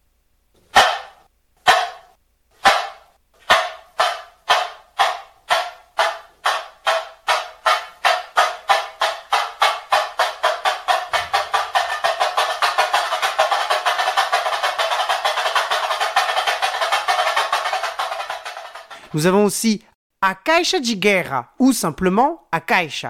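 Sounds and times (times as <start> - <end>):
tamborim small samba drum struck with a stick: 0.7 - 19.1
speech: 19.2 - 23.0.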